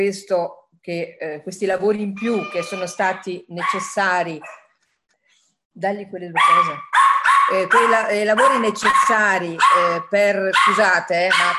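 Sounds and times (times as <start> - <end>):
speech: 0.0 - 4.6, 5.8 - 6.9, 7.5 - 11.5
dog barking frantically after the doorbell rings: 3.6 - 4.8, 6.4 - 11.5.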